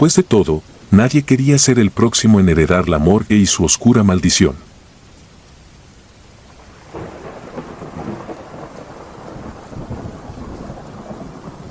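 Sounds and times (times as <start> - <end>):
speech: 0.0 - 4.7
heavy rain on rooftops in Veracruz: 0.0 - 11.6
low rumble of thunder: 6.5 - 11.6.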